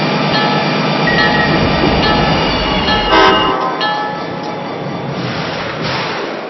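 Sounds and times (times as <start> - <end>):
train rumbling as it pulls into a station: 0.0 - 6.4
high metallic squeals of a train pulling into a station: 1.1 - 4.8.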